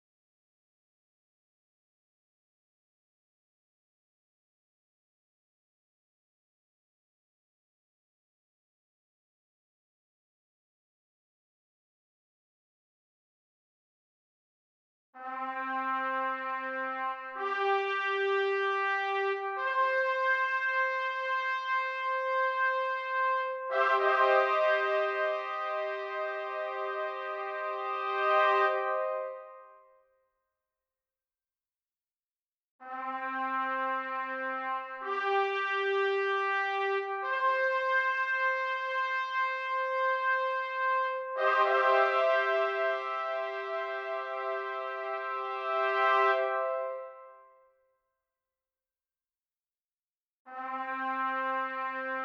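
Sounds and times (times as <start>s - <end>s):
trumpet: 15.2s - 30.1s, 32.8s - 47.8s, 50.5s - 52.2s.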